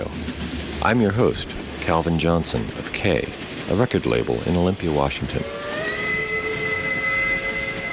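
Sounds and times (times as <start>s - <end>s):
train passing on rails: 0.0s - 7.9s
speech: 0.8s - 5.6s
high-pitched metallic squealing of train on rails: 5.4s - 7.9s.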